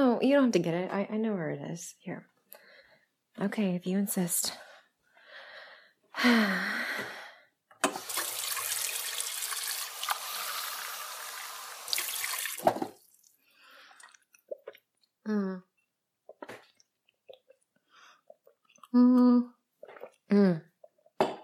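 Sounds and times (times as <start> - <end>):
speech: 0.2 - 2.3, 3.4 - 4.7, 6.2 - 7.2, 18.9 - 19.6, 20.3 - 20.7
water pouring into a glass: 7.9 - 14.2.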